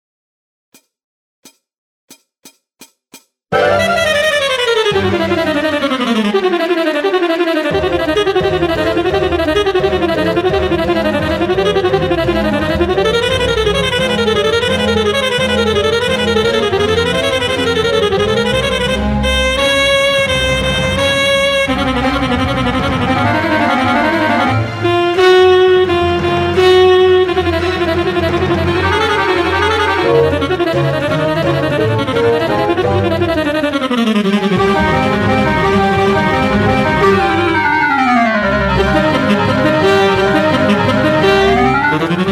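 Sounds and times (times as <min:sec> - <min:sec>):
saxophone playing: 0:03.6 - 0:42.3.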